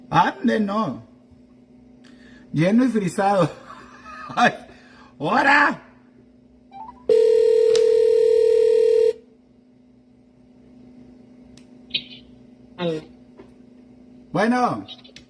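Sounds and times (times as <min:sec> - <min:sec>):
speech: 0:00.1 - 0:01.1, 0:02.5 - 0:03.6, 0:04.3 - 0:05.8, 0:12.8 - 0:13.1, 0:14.3 - 0:15.0
telephone ringing: 0:06.8 - 0:09.2
soft click as the telephone line is picked up: 0:07.2 - 0:08.2.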